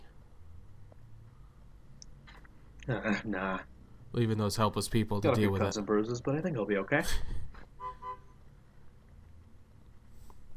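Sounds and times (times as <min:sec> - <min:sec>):
speech: 0:02.9 - 0:07.4
car horn tooting: 0:07.8 - 0:08.4.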